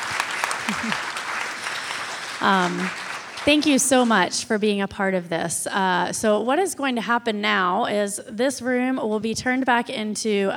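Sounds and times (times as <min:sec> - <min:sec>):
audience applause for a panel: 0:00.0 - 0:04.4
speech: 0:00.8 - 0:01.1, 0:02.4 - 0:10.5.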